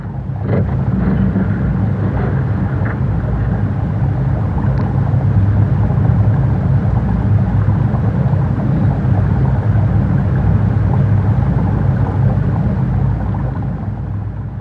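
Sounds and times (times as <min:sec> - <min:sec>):
water flowing beneath glacier ice resonating in the ice: 0:00.0 - 0:14.5.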